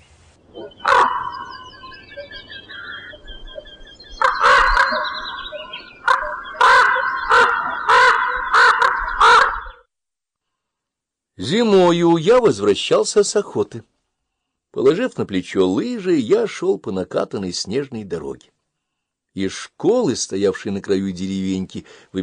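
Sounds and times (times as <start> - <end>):
crows cawing: 0.6 - 2.1, 4.2 - 9.8
speech: 11.4 - 13.9, 14.8 - 18.5, 19.4 - 22.2.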